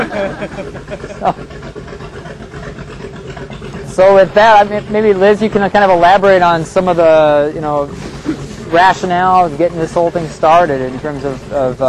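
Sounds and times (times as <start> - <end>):
laughter: 0.0 - 1.6, 7.9 - 10.4
recreational motorboat engine droning on a lake: 0.0 - 11.8
speech: 0.1 - 2.1, 3.9 - 11.8.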